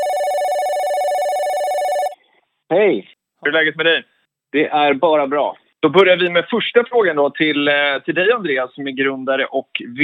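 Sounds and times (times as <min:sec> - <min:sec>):
telephone ringing on an outgoing call: 0:00.0 - 0:02.2
speech: 0:02.7 - 0:10.0.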